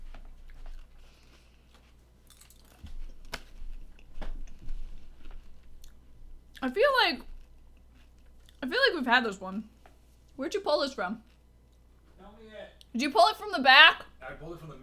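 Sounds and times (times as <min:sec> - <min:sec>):
crunchy chewing of celery: 0:00.0 - 0:09.0, 0:11.2 - 0:12.2
low noise: 0:00.0 - 0:14.8
speech: 0:06.6 - 0:07.3, 0:08.6 - 0:09.7, 0:10.4 - 0:11.2, 0:13.0 - 0:14.8.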